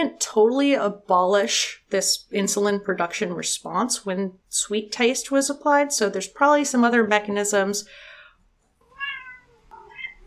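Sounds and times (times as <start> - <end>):
speech: 0.0 - 8.1
cat meowing: 8.8 - 10.2.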